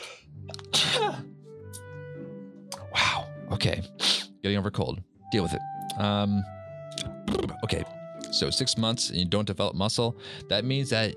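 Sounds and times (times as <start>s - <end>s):
loud sneeze: 0.7s - 1.2s
speech: 3.6s - 6.6s, 7.3s - 11.1s.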